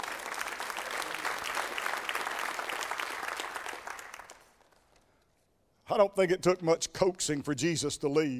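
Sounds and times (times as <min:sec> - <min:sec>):
crowd clapping and applauding: 0:00.0 - 0:05.0
speech: 0:05.9 - 0:08.3.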